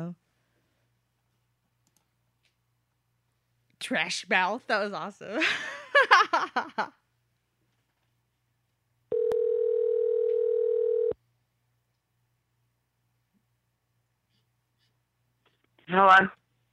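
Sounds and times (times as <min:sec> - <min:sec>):
click: 0:01.8 - 0:02.6
speech: 0:03.8 - 0:07.0, 0:15.9 - 0:16.4
telephone dial tone while calling back: 0:09.1 - 0:11.2.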